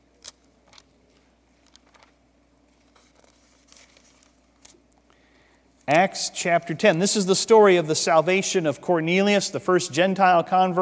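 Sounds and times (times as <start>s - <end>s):
low steady room hum: 0.0s - 10.8s
Bible pages rustling as audience turns them: 0.2s - 5.0s
speech: 5.9s - 10.8s.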